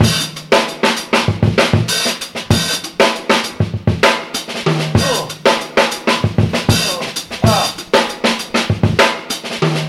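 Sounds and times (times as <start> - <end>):
funky drum loops: 0.0 - 9.8
voice singing ooh ahh: 5.0 - 5.4, 6.7 - 7.9.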